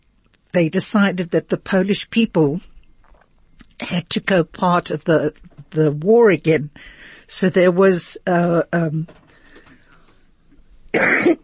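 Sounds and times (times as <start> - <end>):
speech: 0.5 - 2.7, 3.8 - 9.2, 10.9 - 11.4
harsh rasping cough: 11.0 - 11.4.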